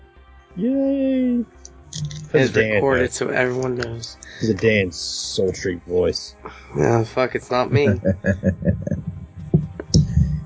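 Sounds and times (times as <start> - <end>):
speech: 0.6 - 1.6, 2.3 - 9.1
laughter: 2.4 - 4.9, 6.7 - 10.3
handling noise from a microphone being moved: 8.4 - 10.4.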